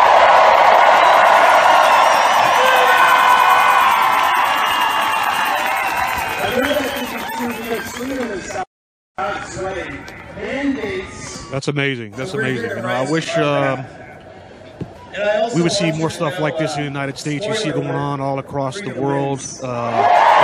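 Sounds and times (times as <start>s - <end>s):
whoops from protest crowd: 0.0s - 8.1s, 19.9s - 20.4s
large protest crowd in Washington D.C. cheering and shouting: 0.0s - 8.6s, 19.6s - 20.4s
speech: 11.5s - 14.0s, 15.2s - 20.2s.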